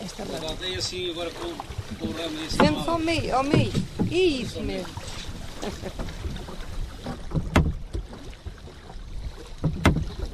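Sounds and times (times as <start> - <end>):
continuous wash of river water from a small boat: 0.0 - 10.3
speech: 0.2 - 6.4
sharp splashy knocks: 1.3 - 8.6, 9.6 - 10.3.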